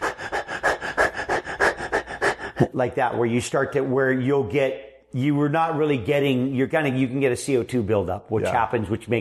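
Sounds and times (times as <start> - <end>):
person demonstrating hyperventilation with rapid forceful panting breaths: 0.0 - 2.8
speech: 2.6 - 9.2.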